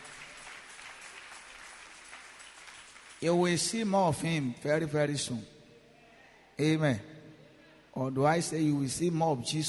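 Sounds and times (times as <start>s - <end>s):
audience clapping hands in dense applause: 0.0s - 3.8s
speech: 3.2s - 5.6s, 6.6s - 7.1s, 8.0s - 9.6s.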